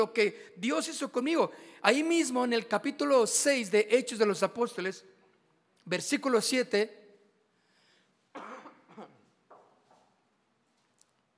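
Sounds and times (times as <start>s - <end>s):
speech: 0.0s - 5.1s, 5.8s - 7.0s
person coughing: 8.3s - 9.4s.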